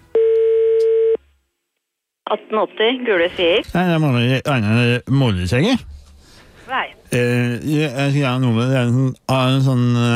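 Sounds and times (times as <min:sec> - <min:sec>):
telephone tone when calling directory inquiries: 0:00.1 - 0:01.2
speech: 0:02.3 - 0:06.0, 0:06.7 - 0:10.1.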